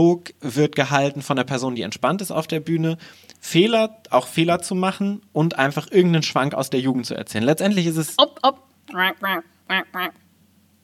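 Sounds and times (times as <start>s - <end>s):
speech: 0.0s - 10.2s
nasal quacks from a duck-call buzzer: 9.0s - 10.2s.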